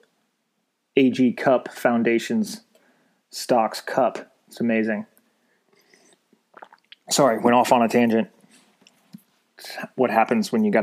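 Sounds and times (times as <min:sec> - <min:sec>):
speech: 0:01.0 - 0:02.7, 0:03.3 - 0:05.1, 0:06.6 - 0:08.4, 0:09.6 - 0:10.8
sipping coffee from a cup: 0:05.7 - 0:07.4
mouth clicks: 0:05.8 - 0:07.2.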